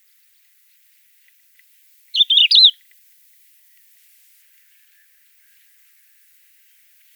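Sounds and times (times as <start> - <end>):
Crested lark Galerida cristata whistled call: 2.2 - 2.8.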